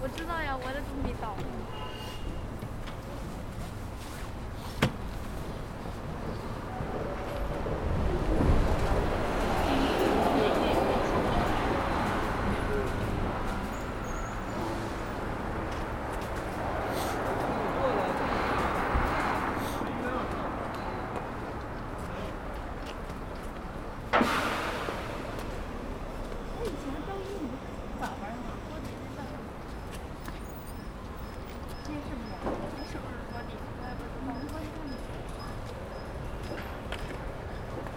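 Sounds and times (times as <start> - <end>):
steady traffic hum outside a university gate: 0.0 - 37.9
vehicles passing outside a university gate: 0.0 - 37.9.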